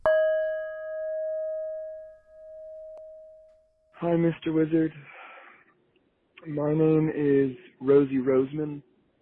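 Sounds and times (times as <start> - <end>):
bell ringing: 0.0 - 3.8
speech: 4.0 - 5.2, 6.4 - 8.9.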